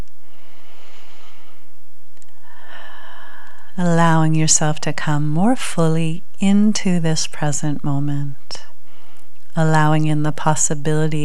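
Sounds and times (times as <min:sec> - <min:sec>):
slow deep breaths during a relaxation exercise: 0:00.2 - 0:03.8, 0:08.8 - 0:09.4
speech: 0:03.8 - 0:08.7, 0:09.6 - 0:11.2.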